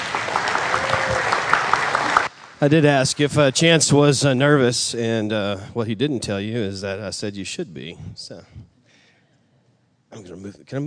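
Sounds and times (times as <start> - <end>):
church congregation giving a clap offering during a worship service: 0.0 - 3.8
speech: 2.6 - 8.7, 10.1 - 10.8.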